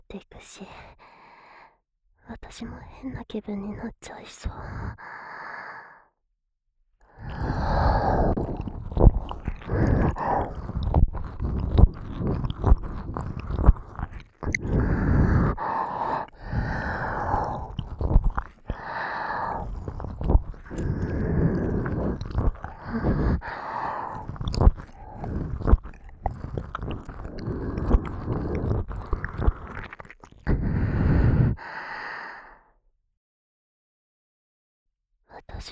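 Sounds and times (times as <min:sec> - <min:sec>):
speech: 0:00.1 - 0:01.0, 0:02.3 - 0:05.2
brief soft breaths: 0:07.1 - 0:32.6
slow wet ear-licking mouth sounds: 0:07.2 - 0:30.8.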